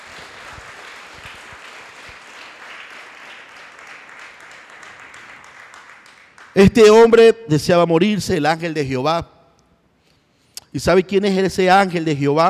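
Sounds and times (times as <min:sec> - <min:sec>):
church congregation applauding during a worship service: 0:00.0 - 0:06.6
speech: 0:06.6 - 0:09.3, 0:10.8 - 0:12.4.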